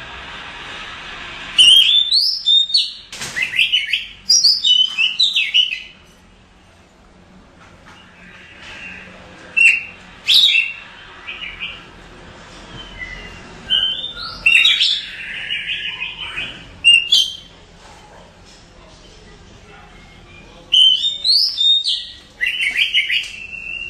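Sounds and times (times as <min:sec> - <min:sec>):
faint background noise: 0:00.0 - 0:23.8
Oriental magpie-robin giving loud whistled and harsh phrases: 0:01.6 - 0:06.0, 0:08.2 - 0:11.8, 0:12.8 - 0:17.5, 0:20.0 - 0:23.8.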